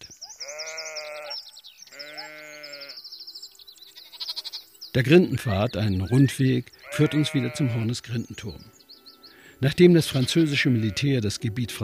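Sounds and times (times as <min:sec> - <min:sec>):
birds chirping: 0:00.0 - 0:11.8
sheep or goats bleating: 0:00.4 - 0:03.0, 0:03.9 - 0:04.7, 0:06.0 - 0:07.9, 0:10.0 - 0:11.2
speech: 0:05.0 - 0:08.8, 0:09.6 - 0:11.8.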